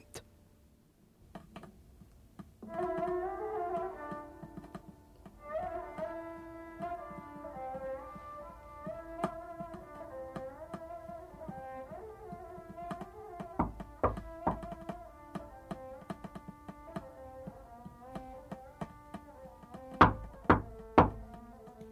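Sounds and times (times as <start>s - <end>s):
music: 2.6s - 21.9s
knocking on a door: 12.6s - 21.5s.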